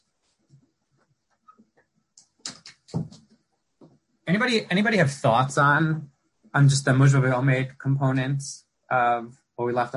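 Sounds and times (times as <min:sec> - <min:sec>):
faint shuffling: 0:00.0 - 0:04.1
speech: 0:04.3 - 0:09.9.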